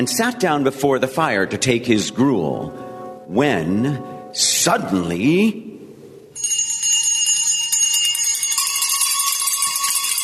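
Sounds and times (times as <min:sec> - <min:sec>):
speech: 0:00.0 - 0:05.6
every bell in a house ringing at once: 0:06.4 - 0:10.2.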